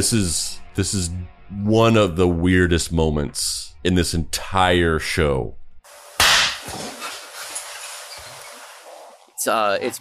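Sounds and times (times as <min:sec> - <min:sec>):
speech: 0:00.0 - 0:05.6, 0:09.4 - 0:09.9
firecracker going off in a tiny dark room: 0:06.2 - 0:06.9.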